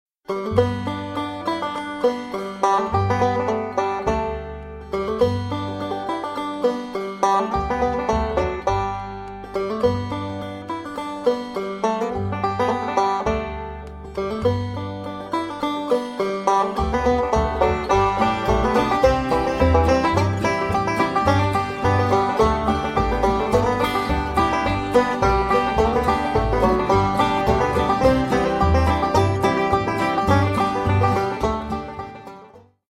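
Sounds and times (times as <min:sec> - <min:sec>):
banjo plucked strings: 0:00.3 - 0:32.8.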